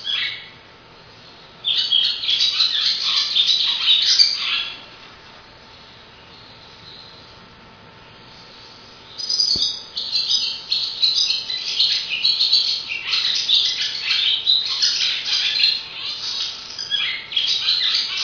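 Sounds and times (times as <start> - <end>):
swallow twittering: 0.0 - 4.9, 5.7 - 7.5, 8.1 - 18.2.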